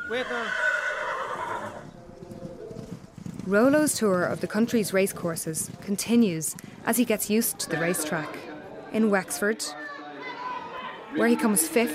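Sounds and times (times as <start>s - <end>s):
horse neighing: 0.0s - 1.9s
speech: 0.1s - 0.7s, 3.5s - 9.8s, 11.1s - 11.9s.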